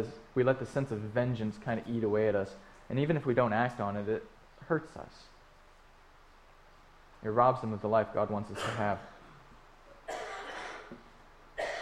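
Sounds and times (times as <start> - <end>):
speech: 0.0 - 5.3, 7.2 - 9.1
person coughing: 8.6 - 9.4, 10.1 - 11.0, 11.6 - 11.7.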